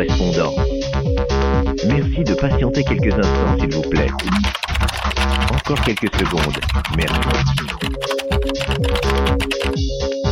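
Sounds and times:
speech: 0:00.0 - 0:00.7, 0:01.9 - 0:08.1, 0:08.7 - 0:10.0
rapid computer keyboard typing clicks in a musical jingle: 0:04.2 - 0:10.2.

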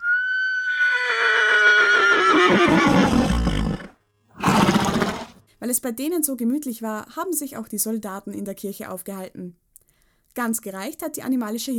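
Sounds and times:
horse neighing: 0:00.0 - 0:05.4
speech: 0:05.7 - 0:09.6, 0:10.4 - 0:11.7.

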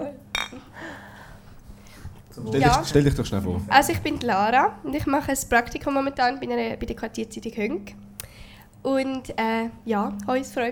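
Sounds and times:
beer glasses clinking in a toast: 0:00.3 - 0:00.7
speech: 0:02.4 - 0:08.0, 0:08.8 - 0:10.7.

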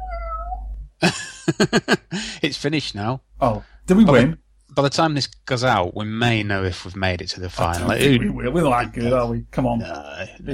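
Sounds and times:
kitten giving a drawn-out high meow: 0:00.0 - 0:00.7
laughter: 0:01.0 - 0:02.2
speech: 0:01.1 - 0:10.5.

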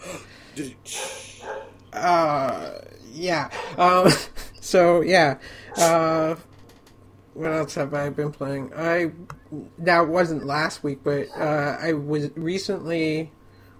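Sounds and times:
speech: 0:00.6 - 0:01.0, 0:03.2 - 0:06.5, 0:07.4 - 0:13.4
virtual dog pitch-sliding whines in a video game: 0:00.9 - 0:01.8
virtual dogs in a video game yipping and barking: 0:00.9 - 0:01.8, 0:11.2 - 0:11.6.

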